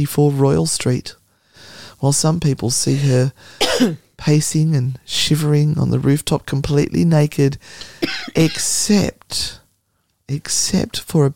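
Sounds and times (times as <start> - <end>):
speech: 0.0 - 1.2, 2.0 - 9.6, 10.3 - 11.3
person coughing: 3.0 - 4.0, 7.8 - 8.8.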